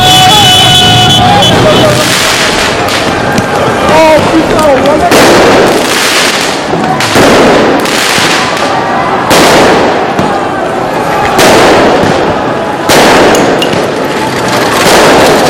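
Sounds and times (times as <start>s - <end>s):
crackling firework debris: 0.0s - 15.4s
crowd roaring and shouting in a street riot in Paris: 0.0s - 15.4s
fireworks banging in a street riot in Paris: 0.0s - 15.4s.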